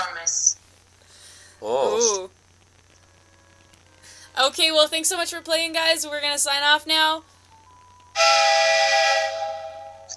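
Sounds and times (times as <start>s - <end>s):
speech: 1.6s - 2.3s, 4.4s - 7.4s
train whistle sound effect played on a buzzer: 8.2s - 10.1s.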